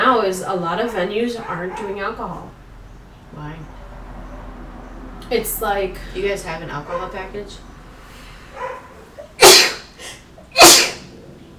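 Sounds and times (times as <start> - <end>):
speech: 0.1 - 2.6, 3.3 - 3.8, 5.3 - 7.7
sneezes: 9.2 - 11.1.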